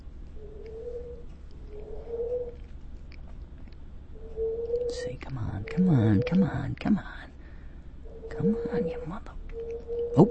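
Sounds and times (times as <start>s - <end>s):
dove or pigeon cooing: 0.0s - 2.6s, 4.1s - 6.6s, 8.0s - 10.2s
steady low rumble: 0.0s - 10.2s
speech: 5.0s - 7.2s, 8.4s - 9.4s.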